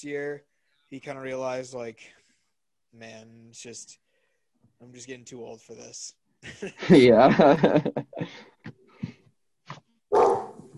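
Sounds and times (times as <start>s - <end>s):
speech: 0.0s - 2.2s, 2.9s - 4.0s, 4.8s - 8.5s
laughter: 6.4s - 8.4s
dog barking: 10.1s - 10.6s.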